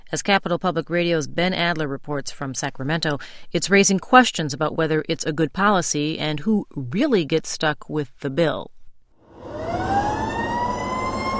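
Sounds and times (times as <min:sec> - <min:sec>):
speech: 0:00.1 - 0:08.8
fire engine siren wailing: 0:09.3 - 0:11.3.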